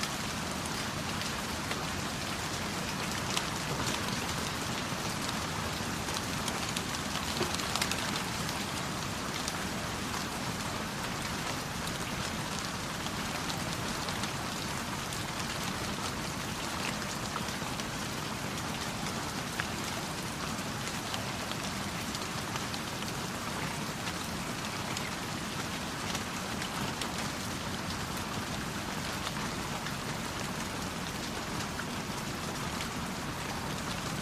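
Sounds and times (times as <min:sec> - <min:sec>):
steady rain pattering on a surface: 0:00.0 - 0:34.2.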